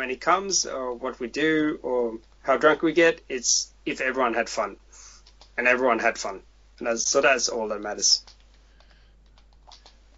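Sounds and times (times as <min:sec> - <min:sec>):
speech: 0:00.0 - 0:05.0, 0:05.6 - 0:08.3
typing on a computer keyboard: 0:05.2 - 0:05.6, 0:08.2 - 0:10.1.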